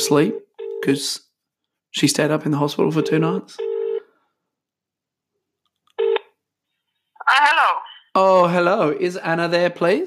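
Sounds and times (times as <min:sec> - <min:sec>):
speech: 0:00.0 - 0:01.2, 0:01.9 - 0:03.7, 0:07.3 - 0:10.0
telephone ringback tone on an outgoing call: 0:03.0 - 0:04.1.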